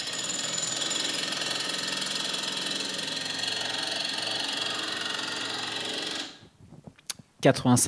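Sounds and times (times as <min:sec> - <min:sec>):
jackhammer pounding: 0:00.0 - 0:06.5.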